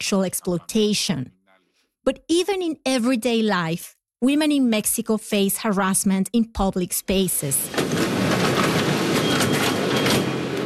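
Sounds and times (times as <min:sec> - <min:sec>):
speech: 0:00.0 - 0:01.4, 0:02.0 - 0:08.0
subway train rumbling in a station: 0:07.7 - 0:10.6.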